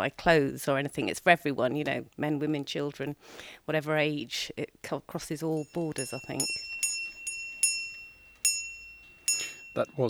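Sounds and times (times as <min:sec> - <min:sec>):
speech: 0:00.0 - 0:06.7, 0:09.8 - 0:10.0
little shop bell ringing in a bookshop: 0:05.5 - 0:10.0.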